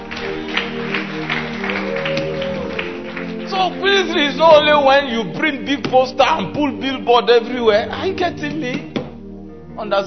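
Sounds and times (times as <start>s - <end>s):
audience clapping: 0.0s - 4.9s
speech: 3.7s - 8.9s, 9.8s - 10.0s.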